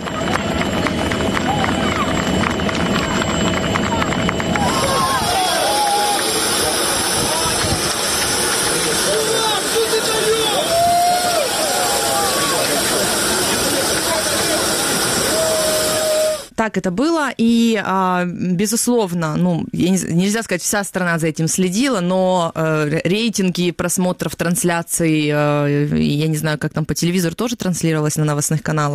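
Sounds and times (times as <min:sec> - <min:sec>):
large dense crowd cheering at airport: 0:00.0 - 0:16.5
excited shouts: 0:04.5 - 0:07.6, 0:09.0 - 0:13.1
speech: 0:16.6 - 0:28.9.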